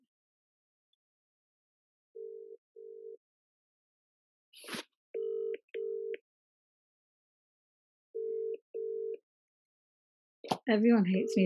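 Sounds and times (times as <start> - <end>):
phone call ringing tone: 2.2 - 3.2, 5.2 - 6.2, 8.2 - 9.2, 11.2 - 11.4
speech: 10.7 - 11.4.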